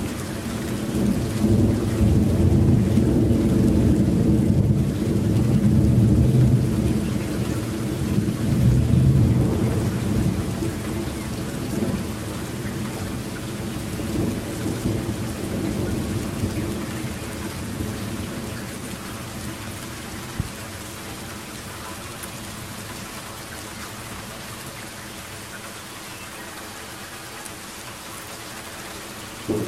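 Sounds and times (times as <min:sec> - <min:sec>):
thunder rumbling over Germany: 0:00.0 - 0:21.6, 0:29.4 - 0:29.6
steady rain: 0:00.0 - 0:29.6.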